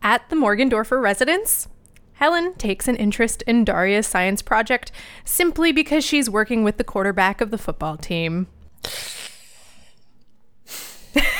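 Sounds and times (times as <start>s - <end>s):
speech: 0.2s - 9.1s
breath being inhaled: 8.8s - 11.2s.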